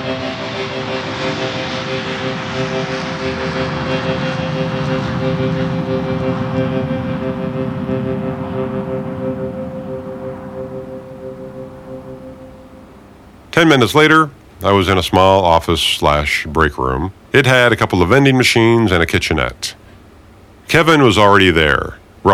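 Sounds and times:
airplane taking off with engine roar: 0.0 - 14.4
speech: 13.6 - 19.8, 20.7 - 22.3.

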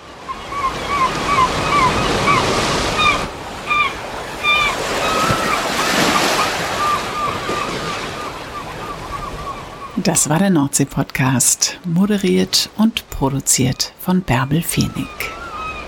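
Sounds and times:
North Sea waves breaking on the shore: 0.0 - 15.8
short high-pitched bird calls chirping: 0.3 - 10.3, 14.7 - 15.8
speech: 10.1 - 15.4.

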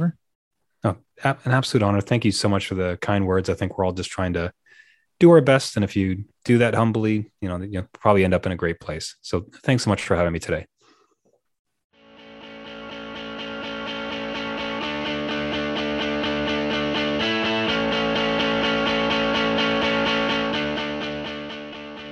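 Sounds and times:
speech: 0.8 - 10.7
instrumental podcast theme tune with distorted effects-heavy tones: 12.0 - 22.1.

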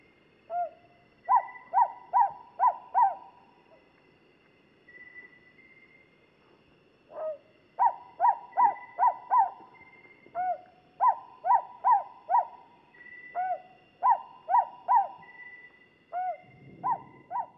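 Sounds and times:
low hiss: 0.0 - 17.5
Luzon hawk owl of the genus Ninox calling in the Philippines: 0.5 - 3.4, 7.1 - 12.7, 13.3 - 15.4, 16.1 - 17.5.

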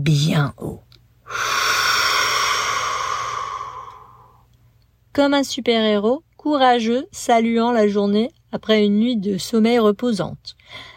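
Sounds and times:
speech: 0.0 - 1.5, 5.2 - 10.9
breath exhaled through the mouth during a morning breathing exercise: 1.3 - 4.4.

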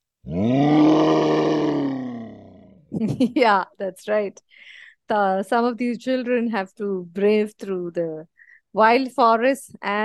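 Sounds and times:
lion roaring: 0.2 - 2.8
speech: 3.0 - 10.0.

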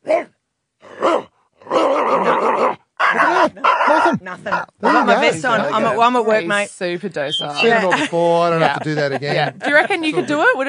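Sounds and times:
recording of dogs barking and snarling played back: 0.0 - 5.2
speech: 4.3 - 10.6
laughter: 7.5 - 10.6.

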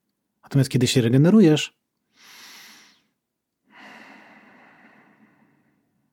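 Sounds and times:
speech: 0.4 - 1.8
long steady exhale: 2.1 - 3.1, 3.7 - 6.0
short airy inhale: 2.1 - 3.1, 3.7 - 5.9.

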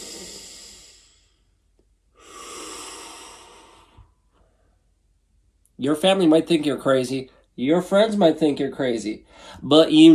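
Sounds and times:
deep slow breathing to ease holiday stress: 0.0 - 5.1, 9.2 - 9.7
speech: 5.8 - 10.1.

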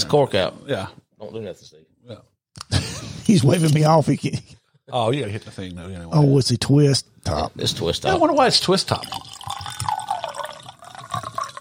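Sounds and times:
speech: 0.0 - 10.0
whiskey pouring into a glass: 8.4 - 11.5.

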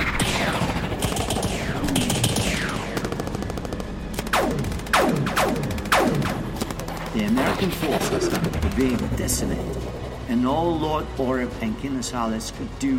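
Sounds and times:
rapid sci-fi laser blasts from an airship's laser turret: 0.0 - 3.6, 4.2 - 6.6
constant machine-gun-like rattle: 0.5 - 10.0
speech: 7.6 - 12.9.

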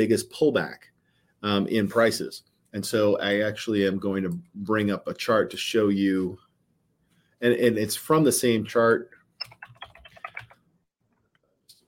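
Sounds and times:
speech: 0.0 - 6.4, 7.4 - 9.1
faint typing on a computer keyboard: 9.4 - 10.6.

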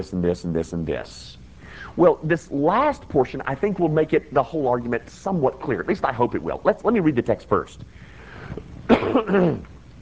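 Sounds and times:
speech: 0.0 - 9.7
person recovering from illness coughing: 8.9 - 9.7.

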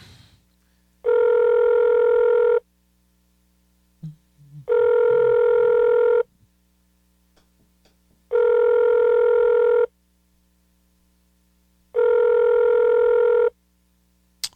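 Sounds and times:
telephone ringback tone of an unanswered phone call: 1.0 - 2.6, 4.7 - 6.3, 8.3 - 9.9, 12.0 - 13.5.

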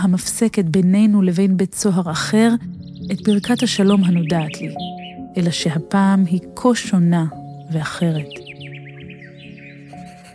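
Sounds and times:
speech: 0.0 - 8.4
bird calling with bright descending chirps: 2.6 - 5.6, 7.3 - 10.3.

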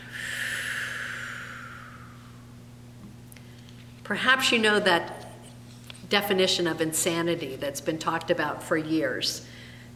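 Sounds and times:
deep breath during a guided breathing exercise: 0.0 - 2.6
speech: 4.1 - 5.2, 6.1 - 9.6.

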